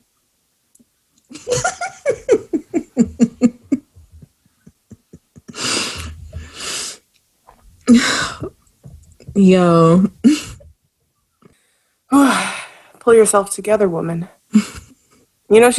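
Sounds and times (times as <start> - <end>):
breathy laughter: 1.3 - 6.7
person blowing their nose: 5.5 - 7.0
speech: 9.4 - 10.4, 13.1 - 14.4, 15.5 - 15.7.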